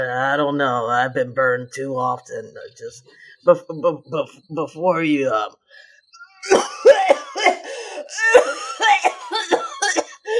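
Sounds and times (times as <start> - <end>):
speech: 0.0 - 6.6, 7.4 - 9.6
harsh coughing fit: 6.4 - 10.3.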